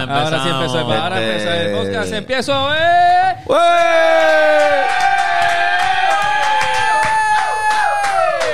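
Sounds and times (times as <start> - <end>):
speech: 0.0 - 4.4
people shouting and whooping: 3.2 - 8.5.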